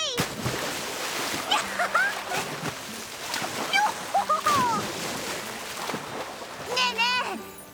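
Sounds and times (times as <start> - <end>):
water splashing while bathing in a waterfall pool: 0.1 - 7.4.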